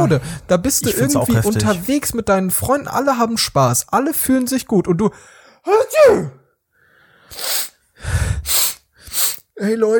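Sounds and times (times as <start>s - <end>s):
speech: 0.0s - 6.4s, 7.3s - 8.6s, 9.6s - 9.9s
drawn-out rising voiced inhale: 6.9s - 9.4s
sharp breathy sneezes: 7.3s - 7.8s, 8.4s - 9.5s.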